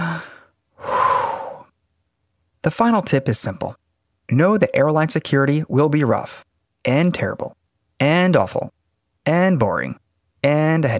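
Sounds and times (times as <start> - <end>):
deep breath: 0.0 - 1.8
speech: 2.6 - 10.9.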